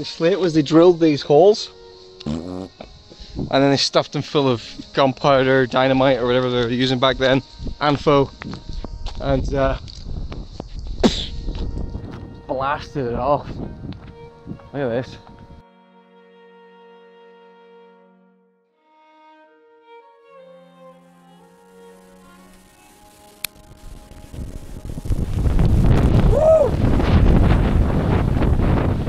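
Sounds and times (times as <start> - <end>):
speech: 0.0 - 2.8, 3.4 - 9.9, 12.6 - 13.8, 14.7 - 15.3
person exclaiming: 2.2 - 2.7, 26.3 - 26.8
strong wind gusts buffeting the microphone by a slate quarry cliff: 3.2 - 3.6, 6.2 - 15.6, 24.2 - 29.0.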